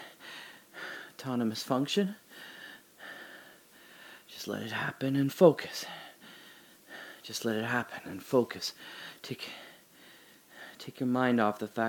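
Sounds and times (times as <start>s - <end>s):
person practising heavy deliberate breathing with a faint whistling wheeze: 0.0s - 1.2s, 2.3s - 4.3s, 5.8s - 7.3s, 8.8s - 10.8s
speech: 1.2s - 2.2s, 4.4s - 6.0s, 7.2s - 9.7s, 10.8s - 11.8s.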